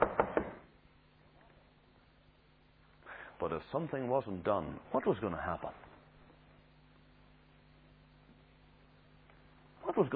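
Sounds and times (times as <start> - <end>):
quick knocks on a door: 0.0 - 0.6
speech: 3.4 - 5.9.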